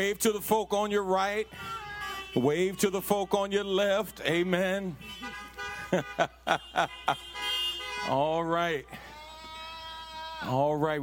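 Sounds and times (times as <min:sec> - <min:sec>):
speech: 0:00.0 - 0:07.3, 0:08.0 - 0:09.0, 0:10.4 - 0:11.0
car horns honking: 0:00.0 - 0:10.5
laughter: 0:05.7 - 0:07.6.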